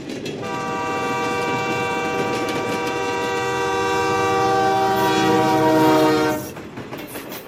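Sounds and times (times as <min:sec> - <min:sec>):
rumble of a passing train: 0:00.0 - 0:07.4
train horn blast: 0:00.4 - 0:06.6.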